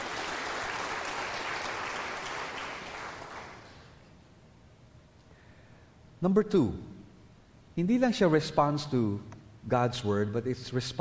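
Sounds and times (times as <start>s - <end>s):
church congregation applauding in a worship service: 0.0s - 4.0s
speech: 6.2s - 6.9s, 7.8s - 10.9s.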